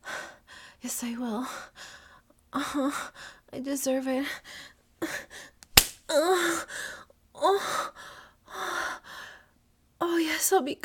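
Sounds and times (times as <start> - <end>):
speech: 0.8 - 5.5, 6.1 - 8.0, 10.1 - 10.8
hand slapping skin: 5.6 - 6.0.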